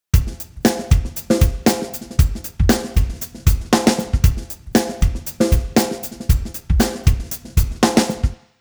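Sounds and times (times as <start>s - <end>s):
time-stretched drums at 90 bpm: 0.2s - 8.4s.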